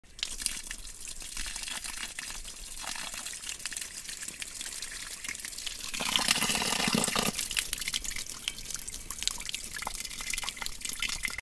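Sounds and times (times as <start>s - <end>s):
water pouring on plants: 0.1s - 11.4s.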